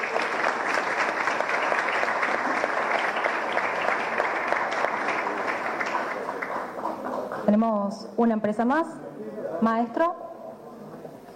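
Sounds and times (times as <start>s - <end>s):
crowd at a licence-awarding ceremony applauding: 0.0s - 7.5s
speech: 7.5s - 10.2s.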